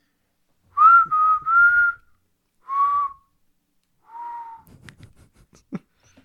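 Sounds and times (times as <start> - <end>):
person whistling a tune into a microphone: 0.8 - 3.3, 4.0 - 4.7.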